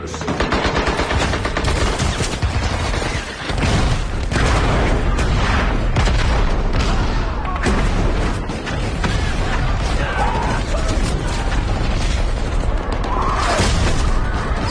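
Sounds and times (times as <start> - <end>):
machine gun fire: 0.2 - 14.5
heavy booms: 3.5 - 14.6.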